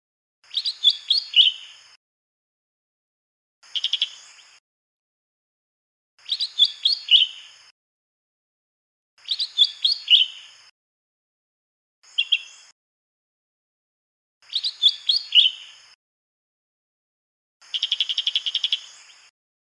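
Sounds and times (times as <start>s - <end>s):
mini cucak hijau chirping in the wild: 0.4s - 2.0s, 3.6s - 4.6s, 6.2s - 7.7s, 9.2s - 10.7s, 12.0s - 12.7s, 14.4s - 16.0s, 17.6s - 19.3s.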